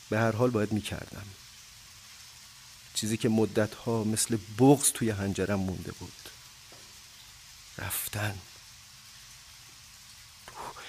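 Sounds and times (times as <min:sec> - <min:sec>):
steady rain of fine drops: 0:00.0 - 0:10.8
speech: 0:00.1 - 0:01.4, 0:03.0 - 0:06.3, 0:07.8 - 0:08.5.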